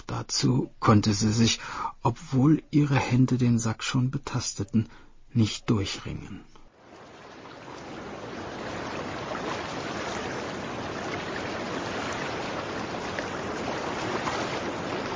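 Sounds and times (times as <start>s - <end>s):
speech: 0.2s - 6.5s
rushing river water: 6.7s - 15.1s.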